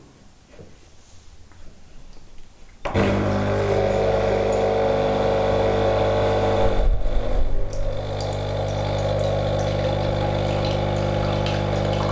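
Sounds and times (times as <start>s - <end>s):
coffee machine motor and pump starting and running: 2.9s - 12.1s.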